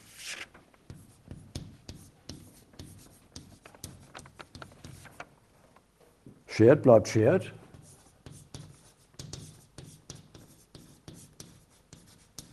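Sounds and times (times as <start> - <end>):
handwriting strokes on a surface: 0.9 - 5.2, 7.7 - 12.5
speech: 6.6 - 7.6.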